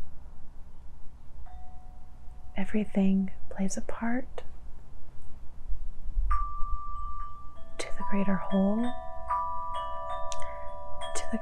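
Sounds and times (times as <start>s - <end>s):
low steady rumble of outdoor breeze: 0.0s - 11.4s
speech: 2.6s - 4.5s, 8.1s - 9.0s
single wind chime ringing with a bright tone: 6.3s - 11.4s.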